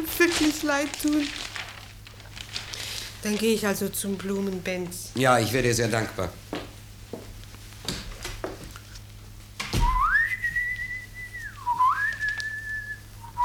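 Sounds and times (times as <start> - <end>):
speech: 0.1 - 1.4, 3.2 - 6.5
man whistling an opera melody: 9.8 - 13.4.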